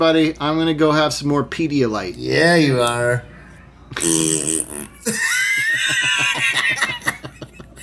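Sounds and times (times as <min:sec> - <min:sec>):
speech: 0:00.0 - 0:03.3, 0:03.9 - 0:07.2
fart: 0:03.9 - 0:05.0
laughter: 0:05.0 - 0:07.8.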